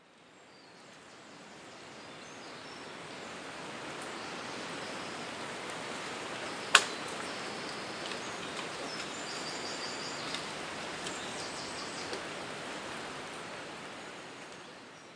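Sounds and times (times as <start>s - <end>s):
strong wind blowing through tall grass: 0.0s - 15.1s.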